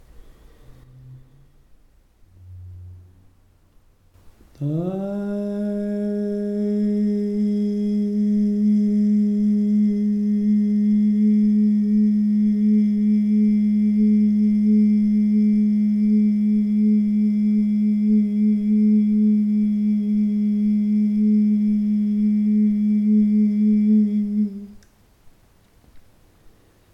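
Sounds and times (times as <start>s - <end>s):
chakra tuning tone: 2.2s - 3.7s, 4.8s - 24.8s.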